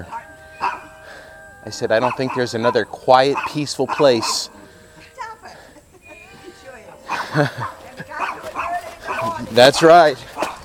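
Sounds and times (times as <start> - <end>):
small dog yapping: 0.1 - 0.9, 2.0 - 4.4, 8.2 - 10.6
speech: 1.6 - 4.6, 7.4 - 7.8, 9.4 - 10.3
laughter: 3.9 - 8.3.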